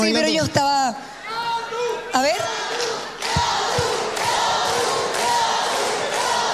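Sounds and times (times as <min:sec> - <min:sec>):
speech: 0:00.0 - 0:03.1
live audience in Punta Arenas cheering and shouting: 0:01.2 - 0:06.5.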